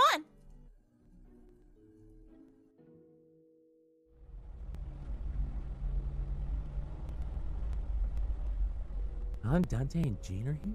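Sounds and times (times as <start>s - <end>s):
car driving rumble: 4.2s - 10.0s
speech: 9.5s - 10.7s.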